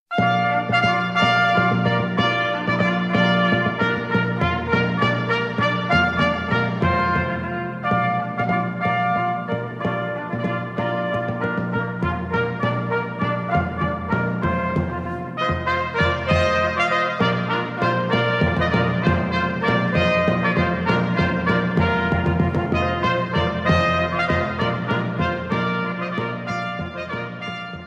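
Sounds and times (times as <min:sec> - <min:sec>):
trumpet fanfares: 0:00.1 - 0:27.8.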